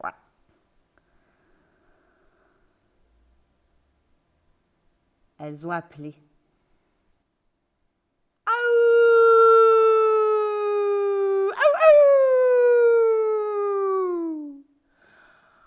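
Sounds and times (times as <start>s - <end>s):
speech: 0.0s - 0.3s, 5.4s - 6.3s
howling echoing across a plain and between town houses: 8.5s - 14.6s.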